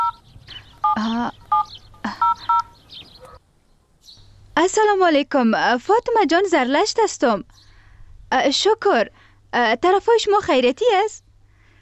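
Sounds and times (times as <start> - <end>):
telephone keypad tones as a phone number is dialled: 0.0 - 0.2, 0.8 - 2.8
speech: 1.0 - 1.4, 4.6 - 7.7, 8.3 - 11.2.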